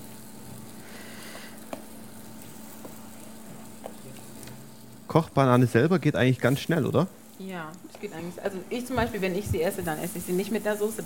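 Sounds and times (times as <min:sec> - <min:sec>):
plantain slices sizzling while frying in pan: 0:00.0 - 0:11.0
sharp pops of plantain slices frying in pan: 0:01.3 - 0:04.9, 0:07.5 - 0:11.0
speech: 0:05.2 - 0:11.0.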